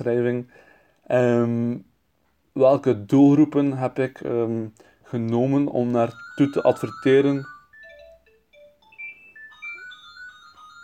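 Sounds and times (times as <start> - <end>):
speech: 0.0 - 1.9, 2.6 - 7.5
office telephone electronic ringtone melody: 5.9 - 10.8.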